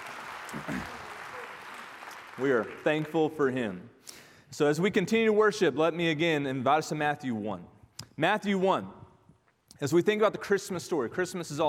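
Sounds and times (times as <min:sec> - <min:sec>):
large crowd applauding: 0:00.0 - 0:03.4
person cheering: 0:00.5 - 0:01.9
speech: 0:02.4 - 0:09.0, 0:09.8 - 0:11.6.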